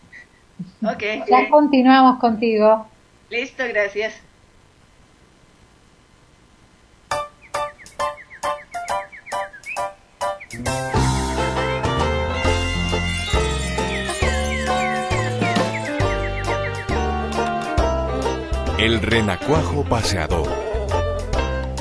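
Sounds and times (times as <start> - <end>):
speech: 0.6 - 4.3, 18.9 - 20.6
short instrumental music interlude with punchy stabs, steady bass and bright melodic lines: 7.1 - 21.7.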